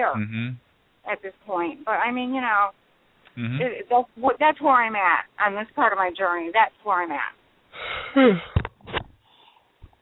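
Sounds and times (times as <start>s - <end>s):
speech: 0.0s - 2.8s, 3.4s - 8.6s
person yawning: 7.8s - 8.6s.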